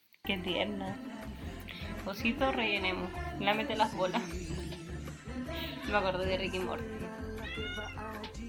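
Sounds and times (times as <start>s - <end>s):
speech: 0.3s - 1.1s, 2.0s - 4.6s, 5.6s - 7.0s
female pet cat meowing: 5.7s - 6.7s, 7.4s - 8.3s.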